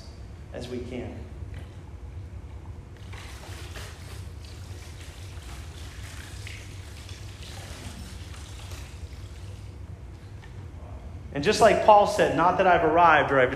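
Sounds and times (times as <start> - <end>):
speech: 0.6 - 1.4, 11.4 - 13.5
liquid poured into a container: 3.0 - 10.4.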